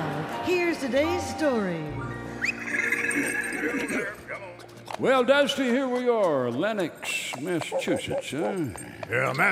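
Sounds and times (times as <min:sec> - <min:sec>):
speech: 0:00.8 - 0:02.1, 0:03.2 - 0:09.5
horse whinnying: 0:02.2 - 0:04.5.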